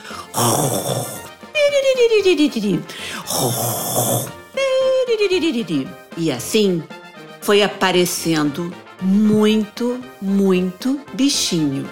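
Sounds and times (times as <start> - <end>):
voice imitating a sleepy fox snoring loudly: 0.0 - 1.4, 3.1 - 5.0
speech: 0.4 - 1.2, 2.0 - 4.4, 5.2 - 11.9.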